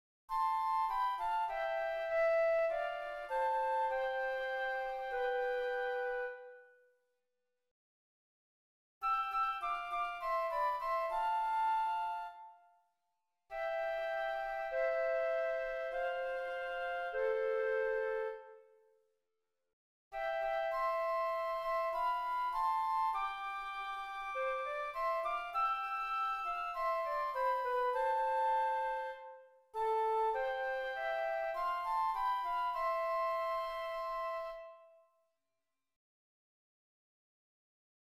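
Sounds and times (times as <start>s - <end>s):
flutes: 0.3s - 7.0s, 9.0s - 12.9s, 13.5s - 19.0s, 20.1s - 35.2s.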